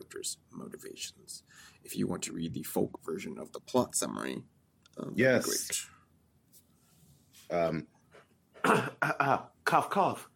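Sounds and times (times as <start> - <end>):
speech: 0.1 - 6.0, 7.5 - 7.9, 8.6 - 10.3
person coughing harshly: 8.6 - 9.3.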